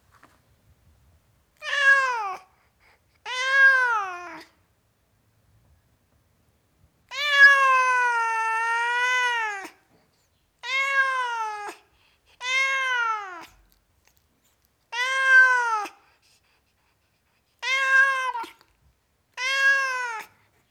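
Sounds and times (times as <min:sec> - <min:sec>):
tom cat meowing: 0:01.6 - 0:02.4, 0:03.3 - 0:04.5, 0:07.1 - 0:09.8, 0:10.6 - 0:11.8, 0:12.4 - 0:13.6, 0:14.9 - 0:16.0, 0:17.6 - 0:18.6, 0:19.3 - 0:20.3.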